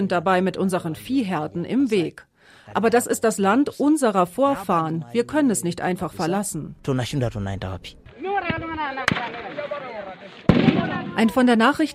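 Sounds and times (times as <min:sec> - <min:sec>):
speech: 0:00.0 - 0:11.9
gunshots as police fire on people: 0:08.3 - 0:11.6.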